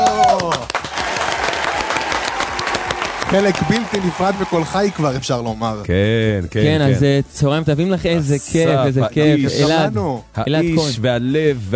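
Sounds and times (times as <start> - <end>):
person whooping: 0.0 - 0.7
audience applause welcoming a singer: 0.0 - 5.4
speech: 3.3 - 11.7.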